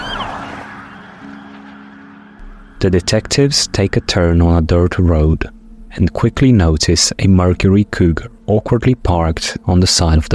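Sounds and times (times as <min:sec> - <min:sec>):
new police cruiser siren wailing: 0:00.0 - 0:04.1
police car moving along twisted roads on a quiet morning: 0:00.0 - 0:05.5
speech: 0:02.8 - 0:10.3.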